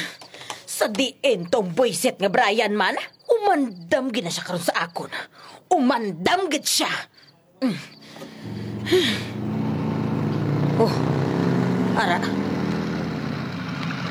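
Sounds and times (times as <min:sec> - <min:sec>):
speech: 0:00.8 - 0:09.4, 0:10.8 - 0:11.2, 0:12.0 - 0:12.5
person gasping: 0:08.1 - 0:09.4
motorcycle engine idling: 0:08.1 - 0:14.0.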